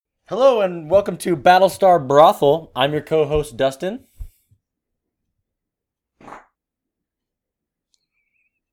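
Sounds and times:
speech: 0.3 - 4.1
single short loud fart: 6.2 - 6.6.

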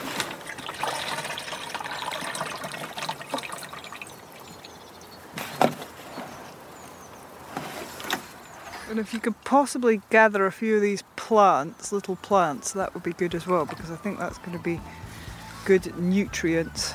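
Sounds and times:
watering can being filled with pond water: 0.1 - 4.8
speech: 8.9 - 15.0, 15.7 - 16.9.

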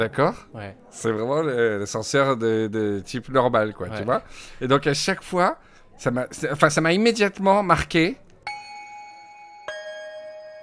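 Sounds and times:
speech: 0.0 - 8.2
two-note electronic chime of an elevator arriving at a floor: 8.5 - 10.6.

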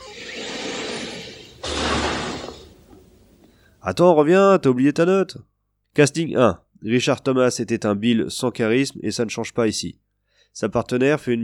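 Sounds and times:
door sliding open with a pneumatic whoosh and low rumble: 0.0 - 3.2
speech: 3.8 - 11.4.

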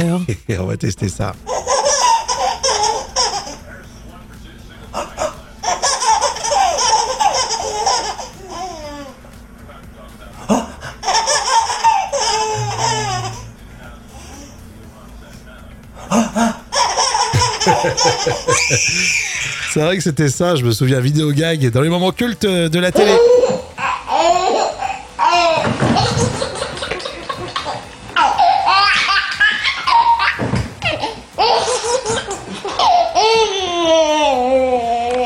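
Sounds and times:
speech: 0.0 - 1.8, 18.7 - 23.5
babies laughing in high-pitched giggles and belly laughs: 1.4 - 3.7, 4.9 - 9.2, 10.4 - 13.6, 16.0 - 20.0, 23.0 - 35.2.

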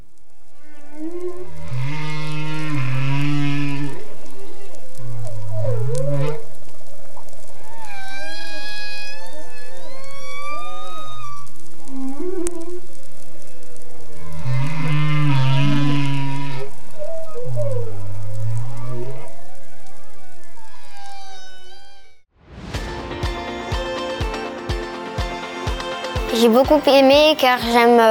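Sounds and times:
whale song: 0.5 - 6.6, 7.2 - 22.2
busy sound: 22.8 - 28.1
speech: 26.5 - 28.1.

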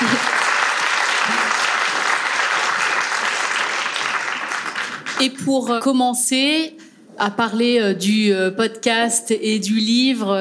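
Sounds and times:
audience applause at an evening event: 0.0 - 5.2
speech: 5.2 - 10.3.

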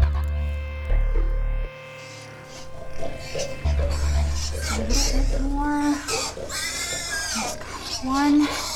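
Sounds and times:
steady low hum: 0.0 - 8.7
very fat pigs grunting and oinking: 3.7 - 8.7
speech: 8.0 - 8.6.

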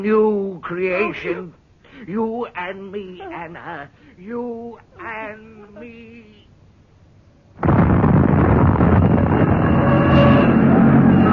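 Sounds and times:
speech: 0.0 - 6.4
gas main explosion boom and roar: 7.6 - 11.3.

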